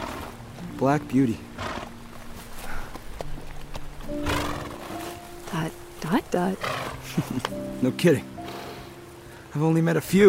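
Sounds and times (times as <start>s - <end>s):
horse snorting breathily: 0.0s - 0.4s, 1.6s - 2.0s, 4.1s - 5.6s, 6.4s - 7.5s
horse hooves striking the ground: 0.0s - 8.9s
speech: 0.8s - 1.5s, 6.4s - 8.3s, 9.5s - 10.2s.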